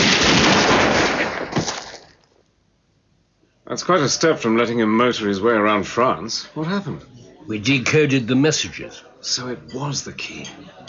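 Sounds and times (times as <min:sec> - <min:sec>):
firing squad volley of gunshots: 0:00.0 - 0:02.1
speech: 0:03.7 - 0:10.8.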